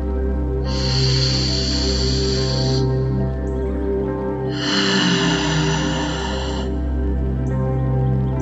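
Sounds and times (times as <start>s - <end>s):
sustained droning tone: 0.0s - 8.3s
slow deep breathing during a meditation: 0.5s - 3.4s, 4.4s - 7.2s.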